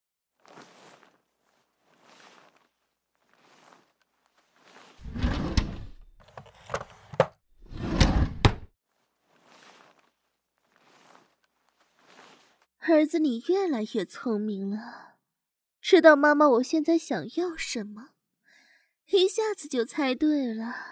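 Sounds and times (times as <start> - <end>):
soft evenly spaced footsteps: 0.4 - 7.4, 9.0 - 12.7
wooden drawer rattling and sliding open with sharp clicks: 5.0 - 8.7
speech: 12.8 - 15.0, 15.9 - 18.1, 19.1 - 20.9.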